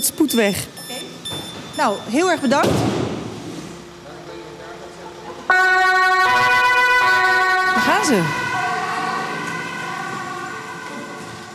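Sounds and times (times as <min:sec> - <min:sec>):
speech: 0:00.0 - 0:00.8, 0:01.8 - 0:02.9, 0:08.0 - 0:08.4
ambulance siren departing on urgent A1 emergency call: 0:05.5 - 0:11.5.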